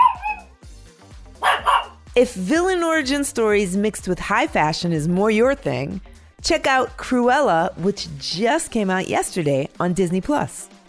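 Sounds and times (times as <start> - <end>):
small pug barking in short high yips: 0.0 - 0.5, 1.4 - 2.0
speech: 2.2 - 10.8.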